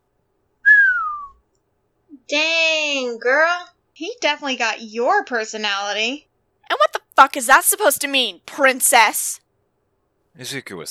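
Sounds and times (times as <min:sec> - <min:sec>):
low human whistle sliding downward in pitch: 0:00.6 - 0:01.4
speech: 0:02.3 - 0:09.4, 0:10.4 - 0:10.9.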